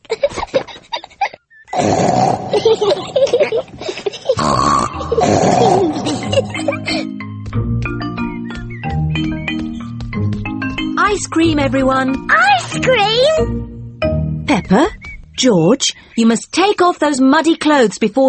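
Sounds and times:
laughter: 0:00.1 - 0:01.4, 0:02.4 - 0:07.2
voices making pig-like snorts: 0:01.7 - 0:06.7
speech: 0:02.6 - 0:03.2, 0:11.3 - 0:13.7, 0:14.6 - 0:18.2
light music with tinkling notes: 0:06.6 - 0:14.9.

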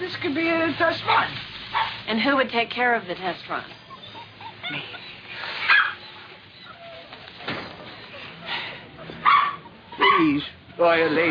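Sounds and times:
speech: 0:00.1 - 0:01.5, 0:02.1 - 0:03.8, 0:04.7 - 0:05.0, 0:10.2 - 0:11.2
puppies yipping: 0:01.1 - 0:02.0, 0:03.2 - 0:11.2
puppies whimpering: 0:03.5 - 0:11.2.

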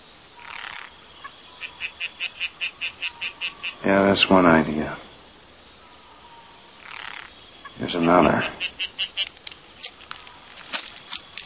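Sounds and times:
tree frog calling: 0:00.0 - 0:11.4
speech: 0:03.8 - 0:05.0, 0:08.0 - 0:09.1.

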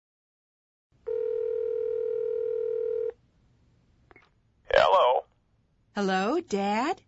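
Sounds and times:
telephone dial tone: 0:01.1 - 0:03.1
speech: 0:06.0 - 0:07.0.

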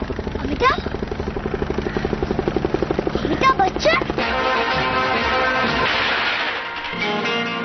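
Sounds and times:
helicopter rotor chop: 0:00.0 - 0:07.5.

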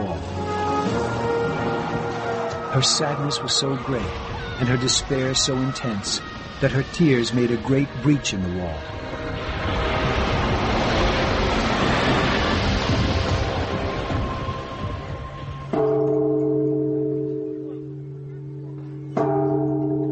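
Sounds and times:
rumbling noise: 0:00.0 - 0:20.0
speech: 0:02.8 - 0:09.9
large temple bell struck by pilgrims for good luck: 0:15.6 - 0:20.0.

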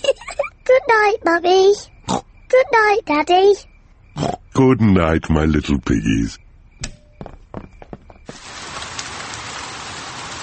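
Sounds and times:
speech: 0:00.9 - 0:06.4
rain pouring down: 0:08.3 - 0:10.4.

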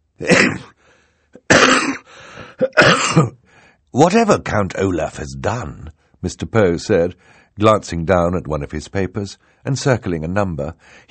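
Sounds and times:
person coughing loudly: 0:00.2 - 0:00.8, 0:01.4 - 0:03.4
speech: 0:02.8 - 0:11.0.

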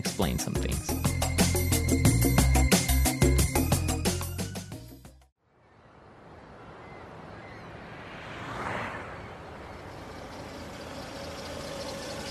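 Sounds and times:
speech: 0:00.0 - 0:01.2
music: 0:00.0 - 0:05.3
old car engine rumbling: 0:07.1 - 0:12.2.

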